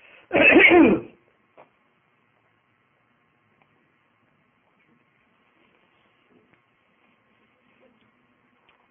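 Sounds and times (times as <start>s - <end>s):
faint hiss: 0.0s - 8.8s
cough: 0.3s - 1.2s
throat clearing: 0.4s - 1.2s.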